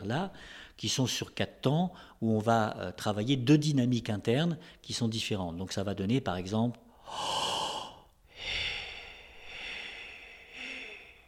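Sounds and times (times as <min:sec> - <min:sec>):
speech: 0:00.0 - 0:07.6
slow breathing during a guided breathing exercise: 0:06.9 - 0:11.2.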